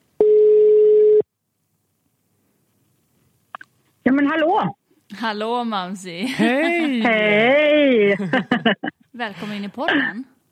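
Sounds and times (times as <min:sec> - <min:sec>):
telephone ringback tone: 0:00.2 - 0:01.2
speech: 0:04.2 - 0:10.3
laughter: 0:06.2 - 0:09.0.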